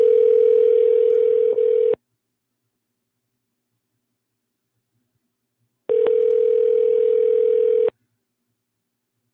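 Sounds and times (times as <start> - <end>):
telephone ringback tone during call transfer: 0.0 - 2.0, 5.9 - 7.9.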